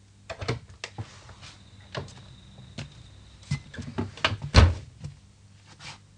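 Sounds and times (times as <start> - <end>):
door opening and closing: 1.8 - 4.8.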